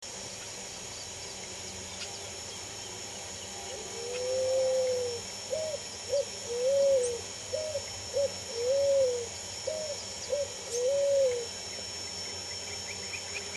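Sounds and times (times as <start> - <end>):
steady background hiss and hum: 0.0 - 13.5
Picazuro Pigeon cooing song: 3.7 - 11.5.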